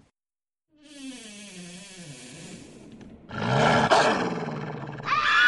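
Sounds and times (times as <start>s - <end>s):
wolf growling and roaring: 3.3s - 5.4s.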